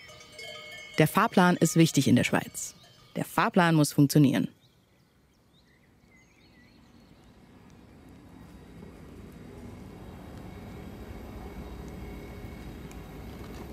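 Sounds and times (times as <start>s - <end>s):
rumbling roar of trains pulling into a railway station in Basel: 0.0s - 3.1s, 6.6s - 13.7s
faint high metallic squeals of trains: 0.0s - 3.4s
speech: 1.0s - 4.6s.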